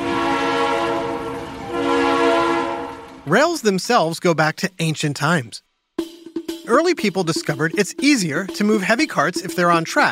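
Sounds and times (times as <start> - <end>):
locomotive horn blaring in chord-like tone: 0.0 - 3.5
speech: 3.3 - 6.1, 6.7 - 10.1.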